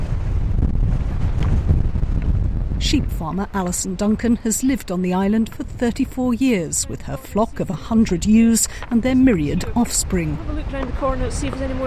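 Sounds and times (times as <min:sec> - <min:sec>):
strong wind on an island buffeting the microphone: 0:00.0 - 0:11.8
speech: 0:02.9 - 0:11.8.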